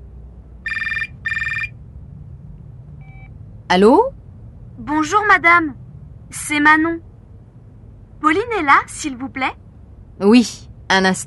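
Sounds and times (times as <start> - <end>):
low hum: 0.0 - 11.2
telephone ringing with an incoming call: 0.6 - 1.8
speech: 3.7 - 4.2, 4.8 - 7.1, 8.2 - 9.6, 10.2 - 11.2.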